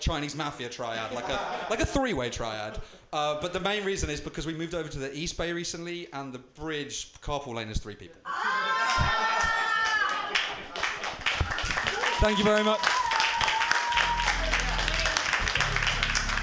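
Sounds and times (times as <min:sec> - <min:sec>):
speech: 0:00.0 - 0:09.4, 0:12.2 - 0:13.0
laughter: 0:00.9 - 0:02.0
audience clapping after a comedy set: 0:09.4 - 0:16.4.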